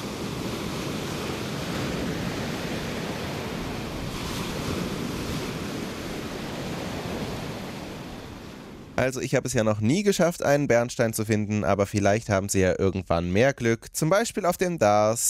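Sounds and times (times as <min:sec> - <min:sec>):
waves breaking on a beach: 0:00.0 - 0:11.2
wind: 0:00.0 - 0:15.2
speech: 0:09.0 - 0:15.2.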